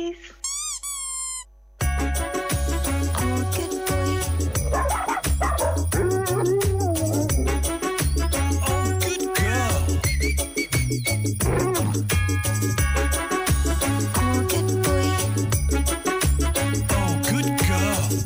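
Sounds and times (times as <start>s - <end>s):
speech: 0.0s - 0.4s
loud steady musical backing with a thumping bass line: 1.8s - 18.2s
dog barking, whimpering, yelping and whining: 4.6s - 7.7s, 11.4s - 12.2s.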